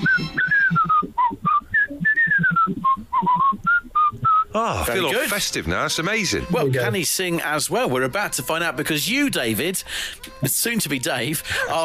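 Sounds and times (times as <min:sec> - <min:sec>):
man whistling a lively melody: 0:00.0 - 0:04.5
speech: 0:04.6 - 0:11.8.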